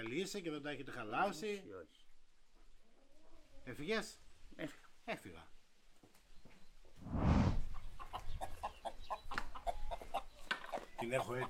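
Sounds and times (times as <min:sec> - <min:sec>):
speech: 0:00.0 - 0:02.0, 0:03.6 - 0:05.6, 0:11.0 - 0:11.4
hen clucking: 0:07.7 - 0:11.4.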